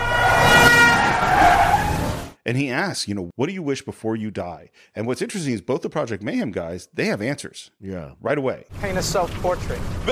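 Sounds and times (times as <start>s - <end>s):
sustained car horn blaring: 0.0s - 2.2s
speech: 2.5s - 10.1s.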